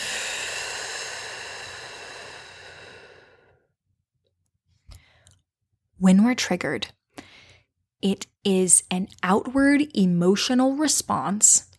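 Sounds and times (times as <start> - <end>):
deep breath inhale and exhale: 0.0 - 3.7
speech: 6.0 - 7.0, 8.0 - 11.7.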